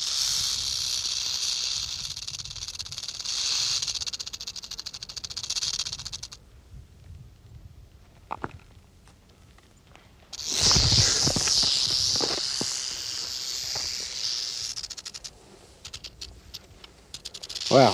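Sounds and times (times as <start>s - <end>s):
rattlesnake rattling: 0.0s - 6.4s, 10.3s - 17.9s
speech: 17.8s - 17.9s.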